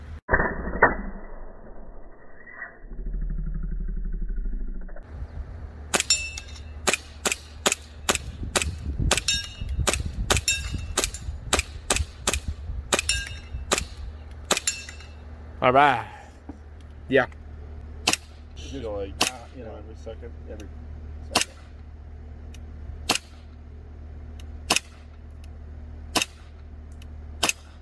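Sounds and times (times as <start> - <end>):
low mechanical hum: 0.0 - 0.2, 1.3 - 27.8
Novritsch airsoft pistol firing sharp snappy shots: 5.9 - 15.2, 18.0 - 18.5, 19.2 - 19.6, 21.4 - 21.8, 23.1 - 23.6, 24.7 - 25.2, 26.1 - 26.6, 27.4 - 27.8
speech: 15.7 - 16.1, 17.1 - 17.4, 18.8 - 20.8.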